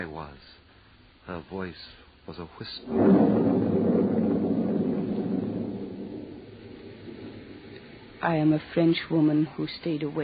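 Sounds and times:
speech: 0.0s - 0.6s, 1.3s - 3.8s, 8.2s - 10.2s
thunder rumbling: 2.8s - 9.3s.

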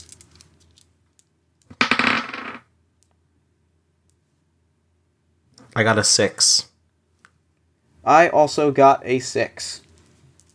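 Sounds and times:
six-sided die rolled during a tabletop game: 0.0s - 2.7s
speech: 5.8s - 6.7s, 8.0s - 9.8s.

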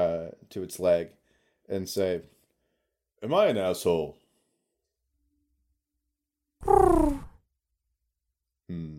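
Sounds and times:
speech: 0.4s - 2.4s, 3.2s - 4.2s, 8.7s - 8.9s
voice imitating a pigeon cooing: 6.6s - 7.4s.

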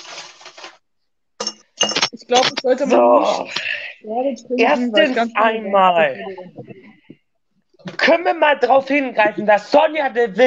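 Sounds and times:
coins clattering and clinking together: 1.4s - 2.8s
speech: 2.2s - 6.8s, 8.1s - 10.4s.

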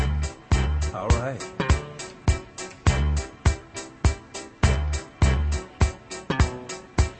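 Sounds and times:
sultry groovy music with thumping bass beat: 0.0s - 7.1s
speech: 1.0s - 1.6s.

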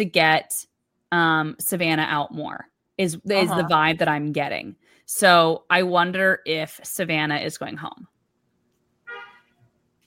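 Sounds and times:
speech: 0.0s - 8.1s
car horn honking outside: 9.1s - 9.6s.

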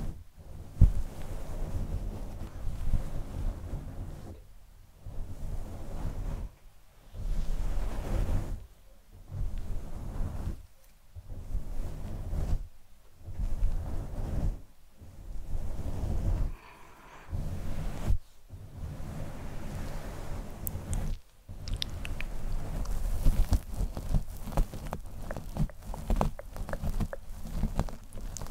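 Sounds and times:
soft rubbing and brushing on a fluffy microphone cover: 0.0s - 28.5s
quick scratching and plucking ticks on a fluffy microphone cover: 20.7s - 28.5s.

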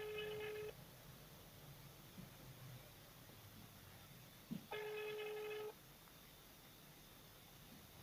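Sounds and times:
phone line electronic ringback tones: 0.0s - 0.8s, 4.7s - 5.8s.

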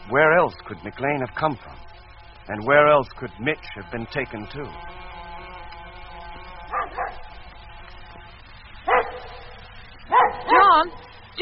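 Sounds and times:
speech: 0.1s - 1.9s, 2.5s - 5.0s
dog barking: 6.7s - 7.2s, 8.9s - 9.5s, 10.1s - 11.0s
dog yelping with higher whiny yelps: 10.1s - 10.8s.

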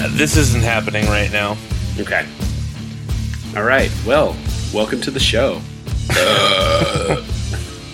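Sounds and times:
speech: 0.1s - 2.5s, 3.5s - 7.3s
loud drawn-out gravelly burp: 6.1s - 7.7s.

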